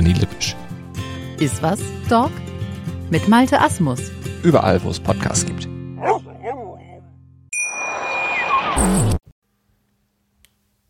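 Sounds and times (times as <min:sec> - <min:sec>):
speech: 0:00.1 - 0:00.6, 0:01.4 - 0:02.5, 0:03.1 - 0:06.7
church bell strike: 0:07.6 - 0:08.2.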